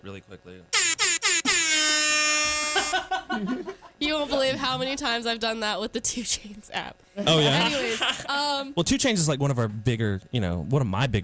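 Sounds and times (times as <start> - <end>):
speech: 0.0 - 1.5, 2.8 - 11.2
air horn sound effect from phone app: 0.8 - 3.0
laughter: 2.6 - 4.8.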